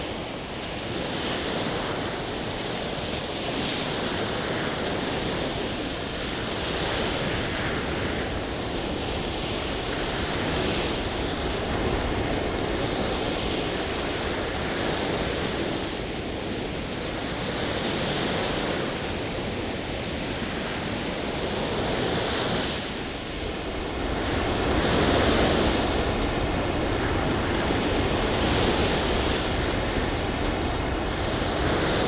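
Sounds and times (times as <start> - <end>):
strong sea wind across the Cliffs of Moher: 0.0 - 32.0
surf of the Atlantic below the cliffs: 0.0 - 32.0.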